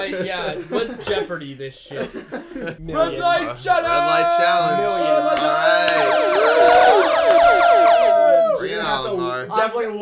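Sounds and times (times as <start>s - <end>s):
laughter: 0.0s - 8.9s
speech: 0.0s - 10.0s
layered wailing siren sound effect: 5.9s - 8.6s.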